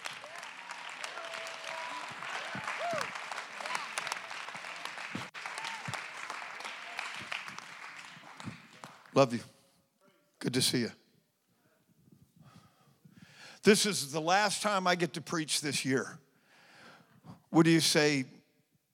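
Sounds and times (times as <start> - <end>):
congregation clapping hands in praise during a church sermon: 0.0 - 9.4
speech: 9.2 - 9.5, 10.5 - 11.0, 13.7 - 16.2, 17.5 - 18.4.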